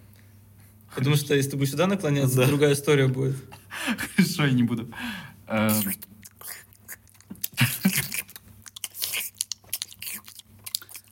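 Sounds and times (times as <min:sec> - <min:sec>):
speech: 0:01.0 - 0:03.6, 0:04.2 - 0:06.1
lip smacking after applying lip balm: 0:05.7 - 0:11.1.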